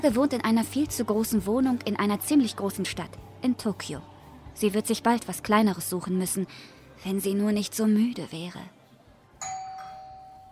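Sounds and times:
speech: 0.0s - 8.8s
doorbell ding-dong chime: 9.4s - 10.5s.

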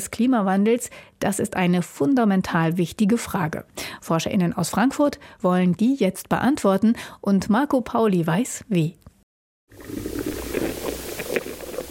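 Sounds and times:
speech: 0.0s - 9.1s, 9.7s - 10.3s
insects and earthworms burrowing through soil underground: 9.9s - 11.8s.

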